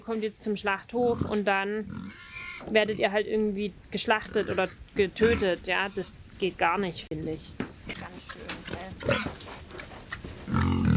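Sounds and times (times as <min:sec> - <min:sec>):
speech: 0:00.1 - 0:07.6
pigs grunting and snuffling in a barn: 0:01.0 - 0:03.2, 0:04.1 - 0:06.1, 0:08.0 - 0:10.9.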